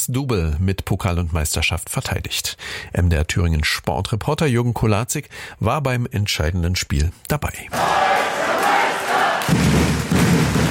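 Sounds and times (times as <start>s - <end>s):
speech: 0.0s - 8.5s
large crowd of fans cheering after a basketball final win: 7.7s - 10.6s.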